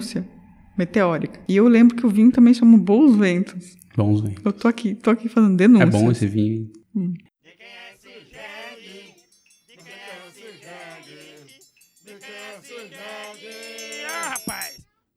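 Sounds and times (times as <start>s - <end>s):
speech: 0.0s - 7.8s
donkey braying: 7.6s - 14.8s.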